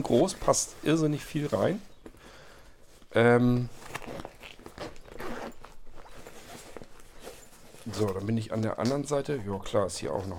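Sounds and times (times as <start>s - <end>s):
speech: 0.0s - 1.9s, 3.1s - 4.0s, 7.9s - 10.3s
light rustling and handling noise: 0.0s - 10.3s
bag compartment zipper being pulled open: 3.8s - 7.6s.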